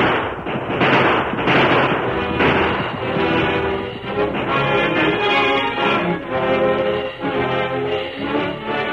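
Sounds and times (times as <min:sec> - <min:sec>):
booming rumbling wash of battle: 0:00.0 - 0:06.8
gunfire barrage in a shootout: 0:00.0 - 0:08.9.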